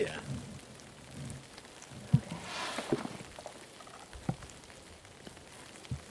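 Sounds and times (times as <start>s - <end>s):
light rain falling outdoors: 0.0s - 6.0s.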